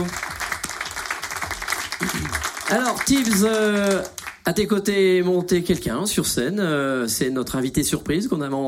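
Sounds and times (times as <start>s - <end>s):
sustained applause from a studio audience: 0.0s - 4.5s
speech: 2.0s - 8.6s.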